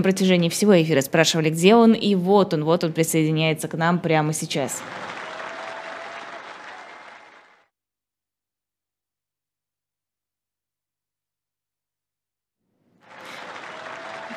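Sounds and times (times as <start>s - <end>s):
speech: 0.0s - 5.2s
group applause welcoming a guest: 4.6s - 7.7s, 13.0s - 14.3s.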